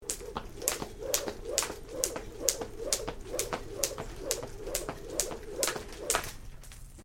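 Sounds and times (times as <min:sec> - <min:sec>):
jumping rope: 0:00.0 - 0:06.4.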